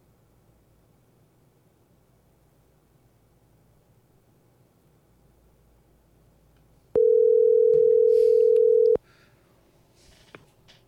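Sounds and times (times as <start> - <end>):
steady loud telephone line tone after dropped call: 7.0 - 9.0.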